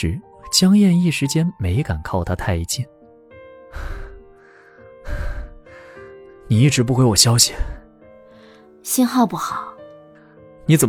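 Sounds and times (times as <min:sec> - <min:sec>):
speech: 0:00.0 - 0:03.0, 0:03.7 - 0:04.0, 0:06.5 - 0:07.8, 0:08.8 - 0:09.7, 0:10.7 - 0:10.8
sustained musical background: 0:00.0 - 0:10.8
heavy breathing from a man who has run all the way: 0:03.8 - 0:06.2.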